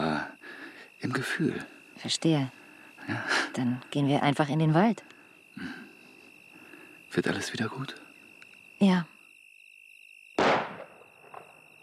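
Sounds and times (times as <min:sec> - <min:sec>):
speech: 0:01.0 - 0:05.8, 0:07.1 - 0:08.0, 0:08.8 - 0:09.1
gunshot with echo: 0:10.4 - 0:11.5.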